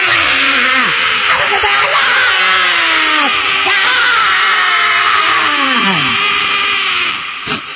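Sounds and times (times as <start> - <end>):
voice imitating female fans screaming hysterically: 0.0 - 7.7.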